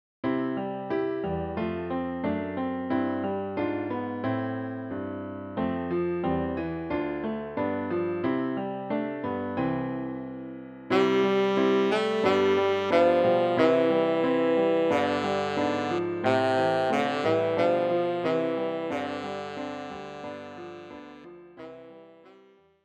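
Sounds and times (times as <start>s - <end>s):
piano accompaniment: 0.2s - 22.8s
tenor saxophone: 10.9s - 22.8s.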